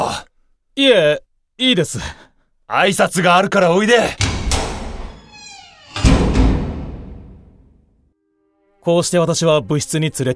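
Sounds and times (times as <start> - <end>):
speech: 0.2 - 4.3, 8.8 - 10.3
heavy door creaking: 4.0 - 7.8.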